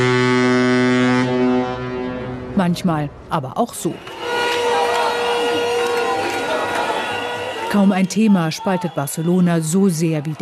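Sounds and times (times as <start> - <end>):
cruise ship horn blasting while docking at port: 0.0 - 2.7, 3.9 - 8.1
speech: 2.6 - 4.2, 7.7 - 10.4.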